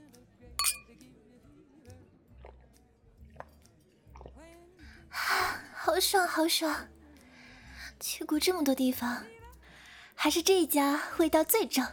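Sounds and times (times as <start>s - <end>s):
glasses clinking in a toast: 0.6s - 0.8s
speech: 6.0s - 6.9s, 8.0s - 9.4s, 10.2s - 11.9s.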